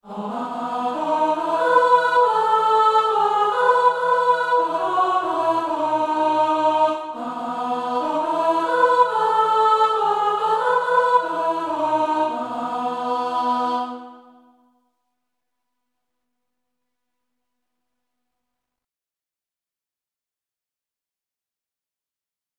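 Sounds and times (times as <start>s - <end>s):
choir altos singing: 0.0s - 14.6s.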